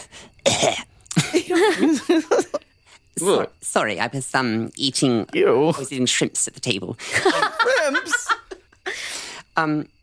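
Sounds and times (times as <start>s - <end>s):
harsh raspy hacking coughs and throaty sputters: 0.4s - 1.3s
laughter: 1.2s - 2.6s, 7.0s - 8.8s
speech: 3.2s - 8.2s, 9.6s - 10.0s.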